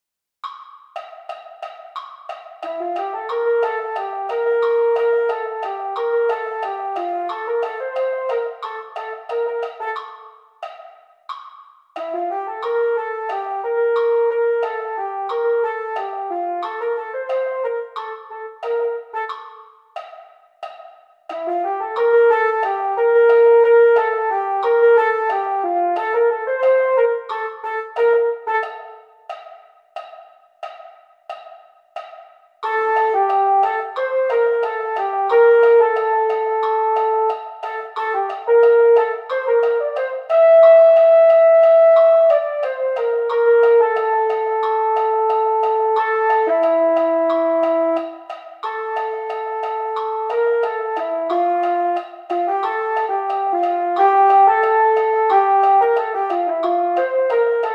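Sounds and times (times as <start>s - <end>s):
mellophone playing slow practice exercises: 1.0s - 31.4s, 32.0s - 57.7s.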